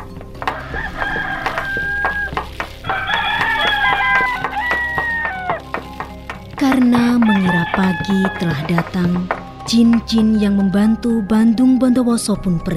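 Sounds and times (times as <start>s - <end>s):
roosters crowing: 0.5s - 5.8s, 7.0s - 9.3s
speech: 6.6s - 12.7s.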